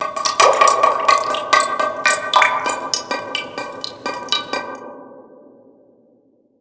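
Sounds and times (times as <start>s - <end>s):
random water drips: 0.0s - 4.9s.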